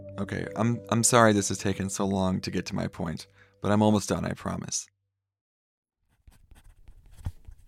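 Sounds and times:
speech: 0.2s - 4.9s
red cedar pencil scratching across paper in short strokes: 6.1s - 7.6s.

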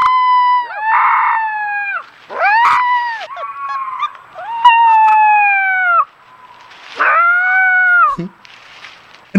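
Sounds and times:
four-week-old Minnesota wolf pup howling in the woods: 0.0s - 6.1s, 6.9s - 8.2s.

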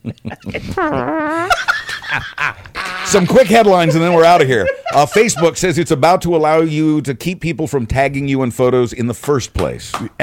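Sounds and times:
speech: 0.0s - 1.5s, 2.2s - 10.2s
laughter: 0.0s - 5.9s
loud drawn-out buzzy fart with wavering pitch: 0.6s - 1.8s.

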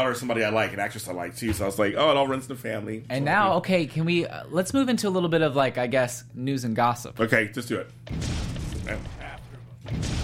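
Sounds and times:
speech: 0.0s - 9.2s
explosion sound effect with rumbling roar and crackling debris: 8.1s - 10.2s.

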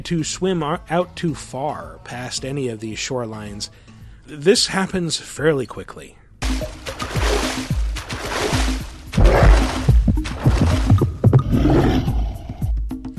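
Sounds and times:
speech: 0.0s - 6.8s
loud continuous roar of churning sloshing water: 6.4s - 11.5s
video game heavy heartbeat thumps: 6.4s - 11.6s.

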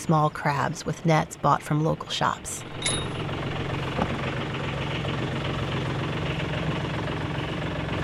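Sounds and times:
speech: 0.0s - 3.2s
small boat engine idling in an inner harbor: 2.6s - 8.0s.

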